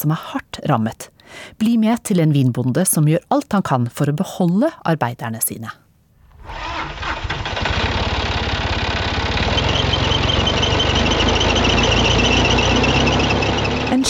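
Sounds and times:
speech: 0.0s - 5.8s
tractor engine running: 6.3s - 14.0s.

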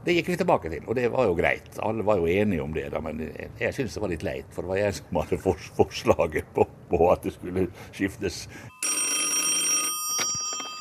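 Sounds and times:
speech: 0.0s - 9.1s
old-fashioned telephone bell ringing: 8.7s - 10.7s.

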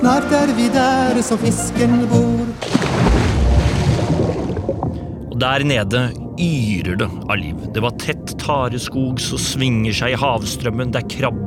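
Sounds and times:
speech: 0.0s - 3.1s, 5.4s - 11.4s
rowing boat sloshing and splashing through water: 1.2s - 5.1s.

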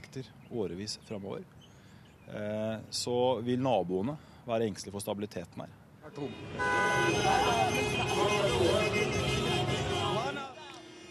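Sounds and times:
speech: 0.1s - 1.7s, 2.3s - 9.3s
celebratory car horns honking in Khartoum Sudan: 6.2s - 11.0s.

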